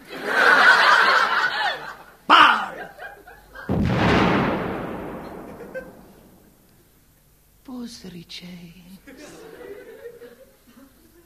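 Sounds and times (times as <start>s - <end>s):
snickering laughter: 0.0s - 3.7s, 5.4s - 6.0s, 9.1s - 11.2s
cannon blast firing a cannonball: 3.7s - 6.6s
sharp crack: 3.7s - 6.7s.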